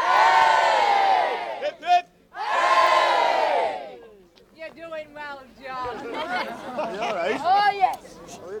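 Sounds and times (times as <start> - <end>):
crowd shouting in unison during village effigy procession: 0.0 - 1.8, 2.4 - 4.0
laughter: 5.9 - 7.6.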